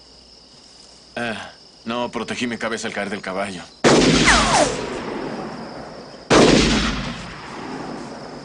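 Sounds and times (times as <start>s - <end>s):
speech: 1.2s - 4.9s
gunshots echoing in a western film scene: 3.8s - 8.0s.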